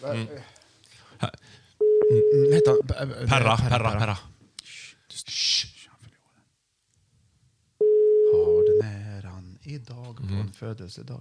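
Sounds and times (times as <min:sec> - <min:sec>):
speech: 0:00.0 - 0:00.6, 0:01.2 - 0:04.4, 0:09.7 - 0:11.1
telephone dial tone: 0:07.8 - 0:08.8.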